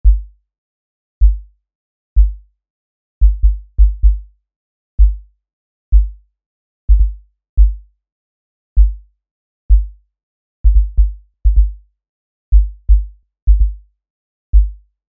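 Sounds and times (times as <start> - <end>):
sub kick drum: 0.0 - 0.3, 1.2 - 1.4, 2.2 - 2.4, 3.2 - 4.3, 5.0 - 5.2, 5.9 - 6.2, 6.9 - 7.9, 8.8 - 9.0, 9.7 - 10.0, 10.6 - 11.8, 12.5 - 13.8, 14.5 - 14.8.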